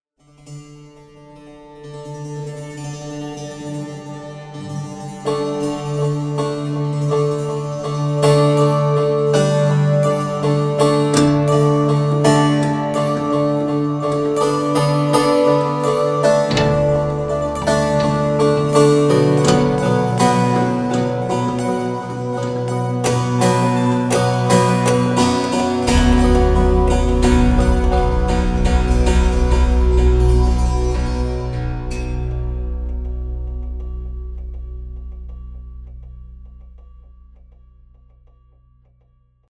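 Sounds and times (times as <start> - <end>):
monochord: 0.2 - 38.1.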